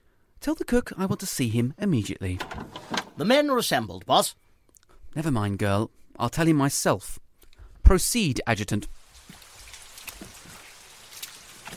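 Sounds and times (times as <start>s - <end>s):
speech: 0.4s - 4.4s, 5.2s - 7.2s, 7.9s - 9.0s
steady rain with a soft hiss: 8.8s - 11.7s
sharper rain drips and splashes: 9.0s - 11.7s.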